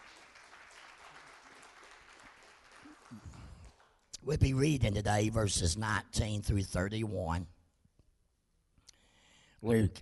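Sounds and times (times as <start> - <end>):
crowd applauding: 0.0 - 4.1
speech: 4.2 - 7.6, 9.6 - 9.9.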